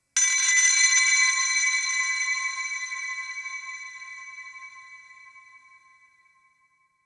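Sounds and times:
high bell: 0.1s - 7.0s.

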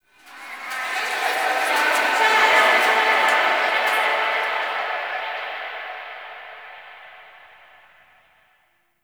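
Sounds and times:
ambient soundscape: 0.1s - 8.4s.

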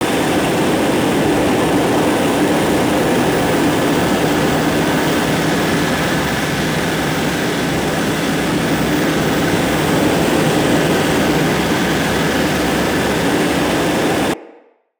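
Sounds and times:
arch wing movement idle: 0.0s - 14.4s.

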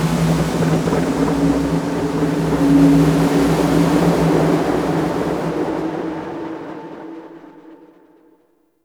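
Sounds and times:
exterior wind gust: 0.2s - 8.1s.

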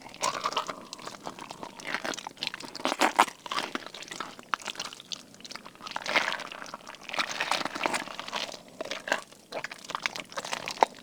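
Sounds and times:
thick slow squishy gore loop: 0.2s - 11.0s.

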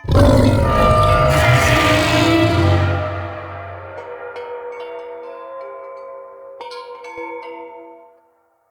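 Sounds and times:
corrupted taunt scream vocals: 0.1s - 4.4s.

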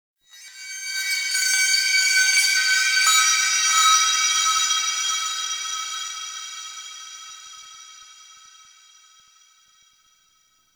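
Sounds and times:
metal chimes: 0.3s - 5.7s.

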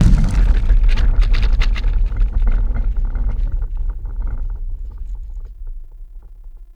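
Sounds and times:
large cave quake rumble: 0.0s - 4.5s.

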